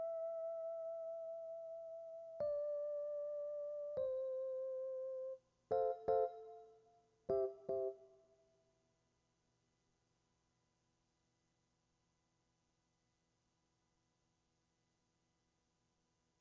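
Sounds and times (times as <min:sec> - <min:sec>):
keyboard recorded by direct input: 0:00.0 - 0:08.6.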